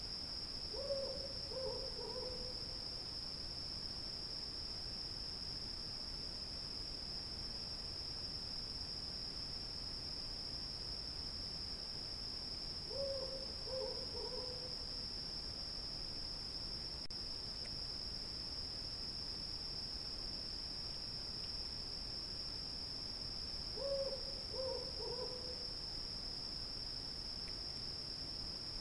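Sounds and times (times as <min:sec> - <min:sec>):
cicadas droning: 0:00.0 - 0:28.7
owl hooting low and hollow: 0:00.7 - 0:02.5, 0:12.9 - 0:14.7, 0:23.8 - 0:25.6.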